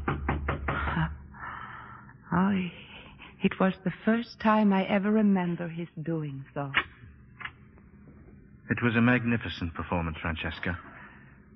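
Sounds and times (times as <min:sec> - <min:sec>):
firm knocks on a wooden door: 0:00.0 - 0:01.0
brief breathy vocal sound: 0:00.7 - 0:02.2
speech: 0:02.4 - 0:02.8, 0:03.4 - 0:06.9, 0:08.7 - 0:10.9.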